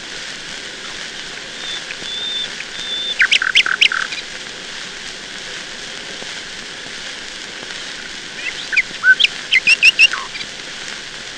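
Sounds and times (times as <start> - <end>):
nightingale singing: 0.8 - 4.2, 8.4 - 10.5.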